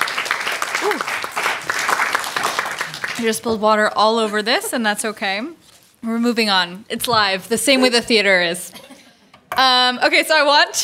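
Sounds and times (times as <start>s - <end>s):
applause for a just-screened film: 0.0s - 3.3s
speech: 0.8s - 1.3s, 3.2s - 8.9s, 9.6s - 10.8s.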